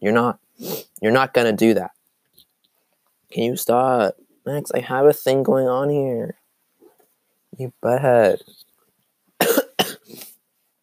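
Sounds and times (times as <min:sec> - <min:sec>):
speech: 0:00.0 - 0:02.0, 0:03.3 - 0:06.4, 0:07.6 - 0:08.7
person coughing: 0:09.4 - 0:10.2.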